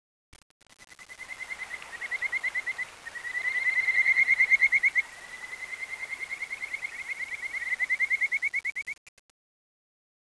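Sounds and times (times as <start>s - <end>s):
frog calling in pulse trains: 1.0s - 9.0s.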